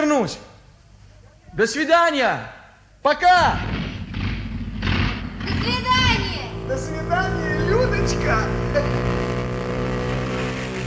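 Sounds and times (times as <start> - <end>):
speech: 0.1 - 0.5, 1.6 - 3.8, 6.7 - 9.3
motorcycle engine driving off: 3.4 - 10.8.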